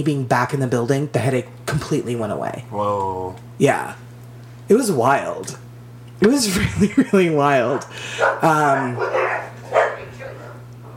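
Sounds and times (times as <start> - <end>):
speech: 0.0 - 4.0, 4.7 - 5.6, 6.2 - 9.9
dogs on a patio barking and yelping at a passer-by: 7.6 - 10.9.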